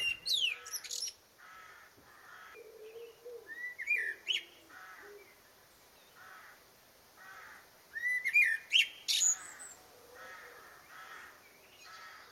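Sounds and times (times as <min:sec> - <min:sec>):
blackbird singing: 0:00.0 - 0:01.2, 0:02.5 - 0:05.4, 0:08.0 - 0:09.9, 0:10.8 - 0:12.2.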